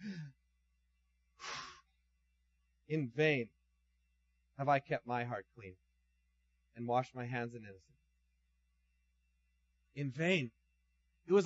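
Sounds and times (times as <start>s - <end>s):
deep breath: 0.0s - 0.4s, 1.4s - 1.9s
speech: 2.9s - 3.6s, 4.6s - 5.8s, 6.8s - 8.0s, 10.0s - 10.6s, 11.2s - 11.4s.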